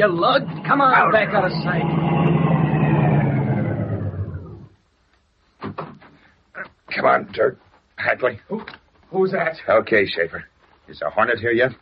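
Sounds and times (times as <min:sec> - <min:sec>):
speech: 0:00.0 - 0:02.4, 0:07.0 - 0:11.8
car engine roaring: 0:00.0 - 0:04.8.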